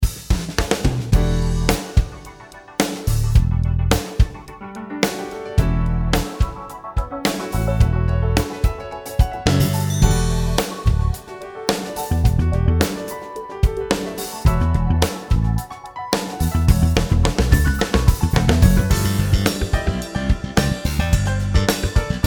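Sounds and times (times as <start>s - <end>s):
backbeat: 0.0s - 22.2s.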